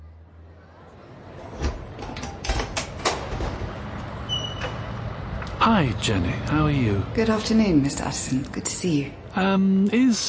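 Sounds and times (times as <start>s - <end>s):
soft door creak: 1.6s - 5.0s
speech: 5.7s - 10.2s.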